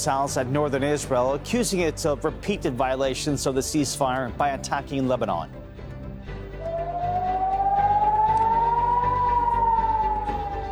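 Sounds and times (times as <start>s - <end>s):
speech: 0.0s - 5.6s
air raid siren wailing: 6.6s - 10.7s.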